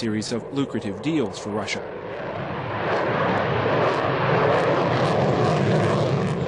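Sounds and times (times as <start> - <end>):
speech: 0.0 - 2.4
Sukhoi 30 fighter bomber jet roaring at Moscow's annual air show: 0.0 - 6.4.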